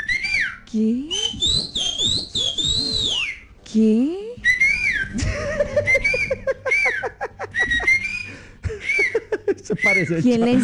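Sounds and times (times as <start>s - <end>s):
speech: 0.7s - 4.2s, 9.7s - 10.6s
person whistling a melody: 1.1s - 3.4s, 4.4s - 5.2s, 5.8s - 10.3s
person laughing breathily: 5.1s - 9.8s.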